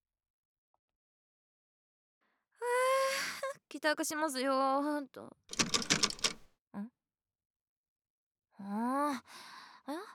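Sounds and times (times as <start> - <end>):
speech: 3.7 - 5.6, 8.6 - 10.1
key jiggling in a stubborn front door lock: 5.5 - 6.5.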